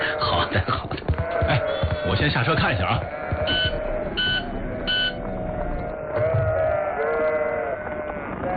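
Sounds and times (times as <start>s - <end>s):
injured lamb with a broken leg bleating: 0.0s - 2.2s, 2.8s - 8.5s
speech: 0.5s - 0.8s, 2.2s - 3.7s
short high electronic beeps: 3.5s - 5.2s.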